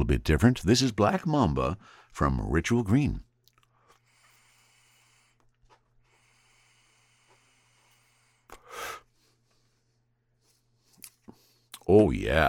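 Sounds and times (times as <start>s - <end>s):
speech: 0.0s - 3.3s, 11.9s - 12.4s
faint breath: 1.8s - 2.1s, 3.7s - 11.7s
vapour inhales from a portable herb vaporizer: 3.8s - 9.9s
sharp breathy burst: 3.9s - 9.9s.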